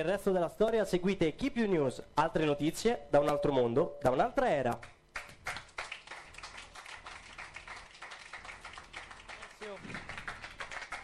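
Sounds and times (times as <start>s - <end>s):
speech: 0.0s - 5.3s
crowd applauding: 5.2s - 11.0s.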